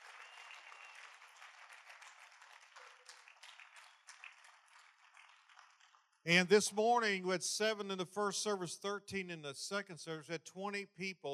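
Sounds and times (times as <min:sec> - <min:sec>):
large audience applause: 0:00.0 - 0:06.0
speech: 0:06.2 - 0:11.3.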